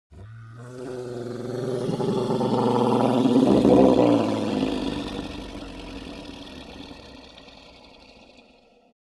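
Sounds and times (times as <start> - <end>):
weak idle noise of a hellhound monster: 0.1 - 8.9.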